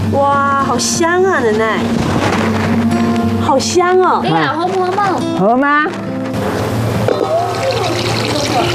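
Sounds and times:
speech: 0.2 - 6.1, 8.6 - 8.7
water pouring onto crushed maple leaves: 7.1 - 8.7.

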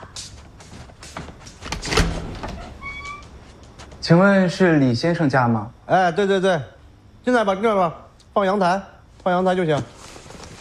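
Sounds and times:
home's door being opened: 1.2 - 3.5
speech: 4.1 - 10.0.

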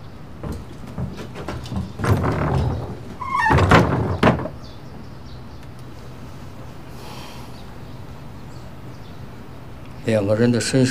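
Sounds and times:
door pushed shut with a scraping rumble and a solid thud: 0.4 - 4.7
speech: 10.1 - 10.8.

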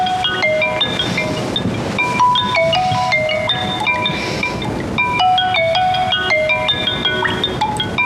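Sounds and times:
melodic electronic phone ringtone: 0.0 - 8.0.

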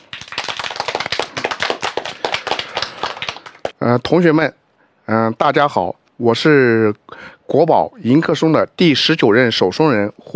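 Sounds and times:
crowd of students clapping: 0.0 - 3.8
speech: 3.8 - 10.3.

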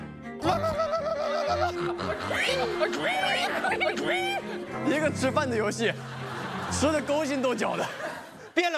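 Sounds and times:
people imitating pig squeals and grunts during a mealtime game: 0.4 - 4.6
people snickering and laughing: 0.4 - 8.6
speech: 1.5 - 8.0, 8.6 - 8.7.

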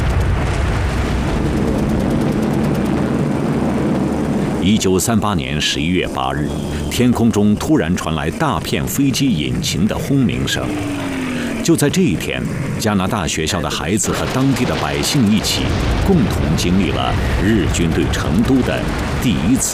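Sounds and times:
bombs exploding during air raid: 0.0 - 5.4, 14.0 - 19.7
many aircraft engines droning overhead: 0.0 - 19.7
person talking: 4.4 - 19.7
chaotic mix of voices: 4.6 - 19.7.

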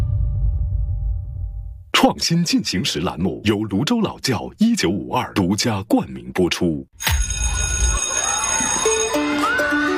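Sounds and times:
low rumble: 0.0 - 1.9
speech: 2.0 - 7.3
crisp electronic school bell chiming across a school campus: 7.0 - 9.9.

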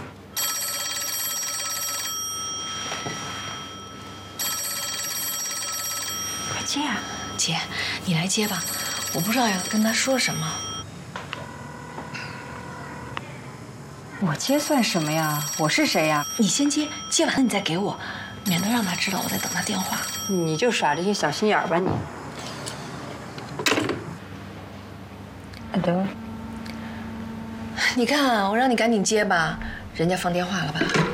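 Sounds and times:
telephone bell ringing: 0.4 - 12.0, 14.4 - 21.7
people talking: 6.6 - 10.8, 14.2 - 22.1, 25.6 - 26.2, 27.8 - 31.1.

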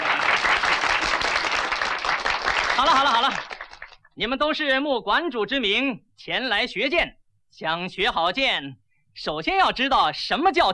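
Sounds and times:
people clapping at the opening of a kendo hall: 0.0 - 4.2
speech: 2.8 - 3.5, 4.2 - 10.7.

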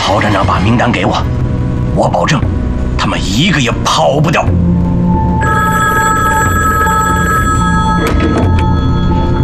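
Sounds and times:
speech: 0.1 - 4.9
telephone bell ringing: 5.4 - 9.4.

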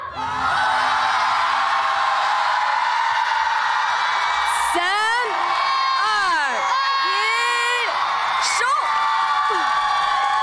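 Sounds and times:
audience shouting and cheering for a dance team at a stage competition: 0.0 - 10.4.

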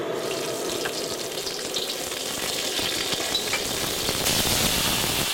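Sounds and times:
hot ginger broth ladled over a fish on low heat: 0.2 - 5.3.

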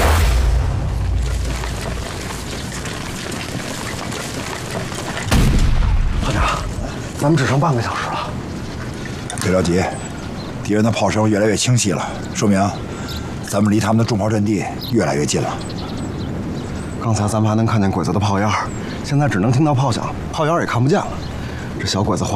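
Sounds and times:
distant artillery fire booming: 0.0 - 2.4, 5.2 - 6.9
low rumble: 0.0 - 9.3
voices talking: 6.2 - 22.3.

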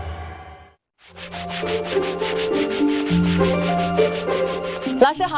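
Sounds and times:
sanding and polishing an ox-horn comb in Fuzhou China: 1.1 - 5.2.

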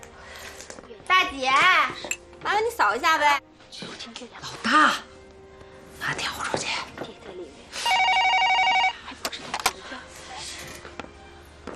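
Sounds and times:
speech: 1.3 - 1.7, 2.4 - 3.5, 4.2 - 5.1
telephone ringing with an electronic trill: 7.8 - 9.0.

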